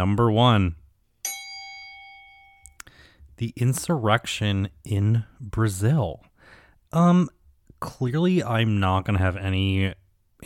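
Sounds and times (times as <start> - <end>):
speech: 0.0 - 0.8, 3.4 - 6.3, 6.9 - 10.4
single bright bell struck: 1.2 - 2.8.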